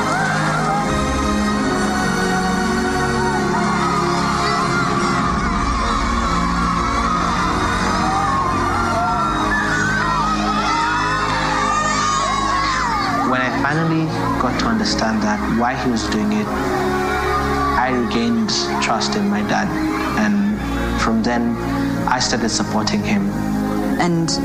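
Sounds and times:
large crowd shouting and whooping excitedly: 0.0 - 22.1
speech: 14.8 - 17.0, 17.9 - 20.4, 21.0 - 24.4.

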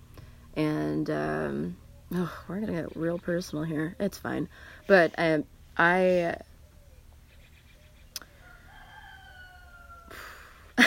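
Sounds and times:
speech: 1.0 - 6.5
rooster crowing: 8.2 - 10.6.

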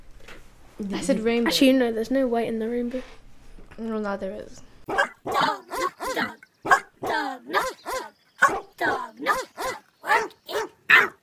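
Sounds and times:
speech: 0.8 - 3.2, 3.8 - 5.5
white American Eskimo dog barking: 4.9 - 11.2.

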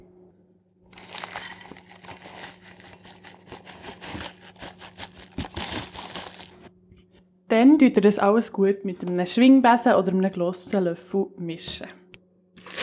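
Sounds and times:
crinkling and rustling as ground hazelnuts are poured into chocolate mixture: 0.9 - 6.7, 12.6 - 12.8
speech: 7.5 - 12.0.

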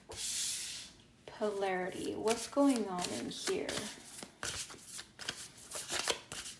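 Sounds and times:
speech: 1.4 - 4.1
deck of tarot cards being shuffled: 2.3 - 6.5.

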